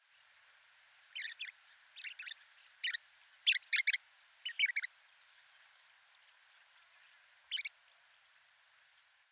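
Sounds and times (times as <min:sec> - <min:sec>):
Chestnut-collared Longspur Calcarius ornatus calling: 0:01.0 - 0:05.0, 0:07.5 - 0:07.8.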